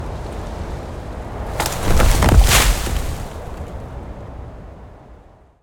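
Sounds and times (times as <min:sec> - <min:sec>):
wind blowing: 0:01.1 - 0:04.7
tree falling: 0:01.4 - 0:03.9.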